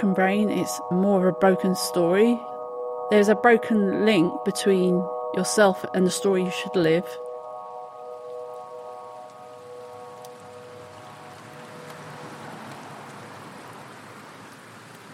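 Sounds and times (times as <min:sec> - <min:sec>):
speech: 0:00.0 - 0:02.5, 0:03.1 - 0:07.2
steady rain pattering on hard surfaces: 0:07.2 - 0:15.1.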